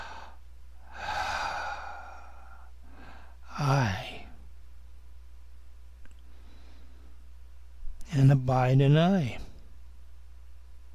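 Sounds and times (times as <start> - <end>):
deep breath during a guided meditation: 0.0 - 3.6, 6.3 - 7.3
speech: 3.6 - 4.1, 8.2 - 9.4.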